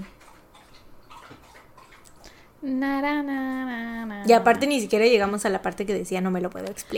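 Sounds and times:
animal lapping drinking water: 0.0s - 2.6s
speech: 2.6s - 6.9s.

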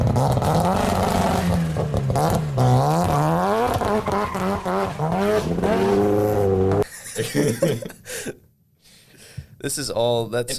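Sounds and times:
rotary-engine car revving: 0.0s - 6.8s
laughter: 6.8s - 8.4s
speech: 9.7s - 10.5s.

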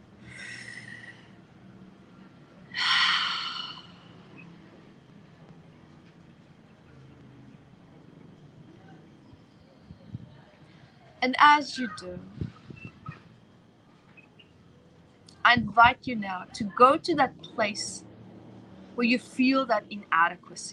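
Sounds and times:
faint low hum: 0.0s - 20.7s
deep breath in and out: 0.2s - 1.5s, 2.7s - 4.4s
speech: 11.2s - 12.4s, 15.8s - 18.0s, 19.0s - 20.7s.

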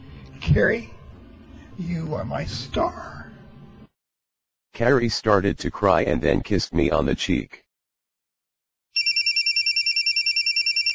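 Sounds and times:
speech: 0.4s - 1.0s, 1.8s - 3.3s, 4.8s - 7.6s
cell phone ringing with a bright electronic trill: 9.0s - 10.9s.

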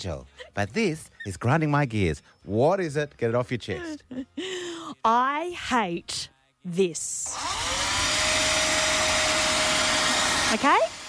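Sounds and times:
speech: 0.0s - 7.8s, 10.5s - 10.9s
leaf blower running: 7.3s - 11.0s.

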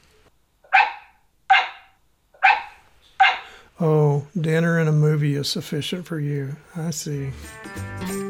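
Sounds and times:
dog barking: 0.6s - 3.5s
speech: 3.8s - 8.2s.

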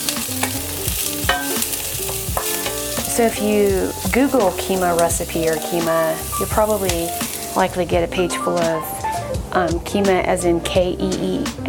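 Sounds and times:
scraping strokes of stirring in a pan: 0.0s - 7.9s
garlic and onions sweating in a pan over low-medium heat: 0.0s - 8.5s
speech: 3.2s - 11.6s.

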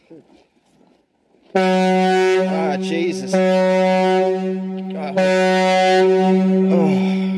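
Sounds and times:
speech: 0.1s - 0.4s, 1.5s - 1.9s, 2.8s - 5.4s
loud deep horn blaring: 1.6s - 7.3s.

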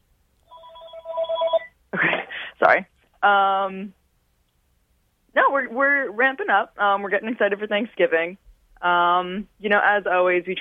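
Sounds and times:
telephone ringing with electronic tone: 0.4s - 1.8s
speech: 2.7s - 4.0s, 5.6s - 10.5s.

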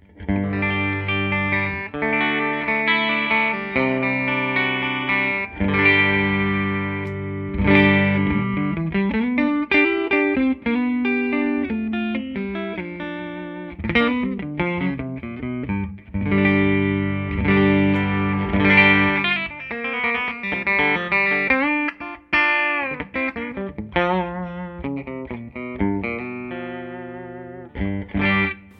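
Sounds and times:
Strat-style electric guitar played through amp with light drive: 0.0s - 28.7s.

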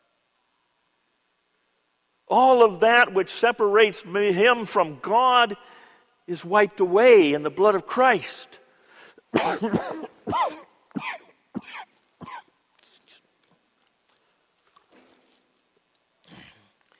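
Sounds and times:
speech: 2.3s - 8.6s, 9.3s - 12.4s
person in a harsh coughing fit: 9.4s - 12.5s.

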